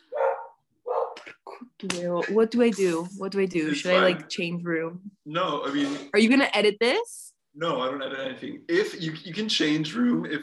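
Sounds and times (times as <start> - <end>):
several rescue dogs barking: 0.0 - 1.2
speech: 1.8 - 10.4.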